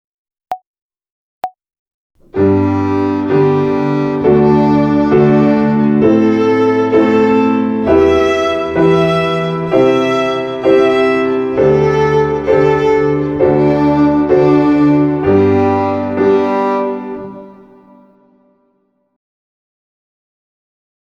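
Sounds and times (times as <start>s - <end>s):
violin playing open strings with détaché bowing exercise: 2.2s - 18.2s.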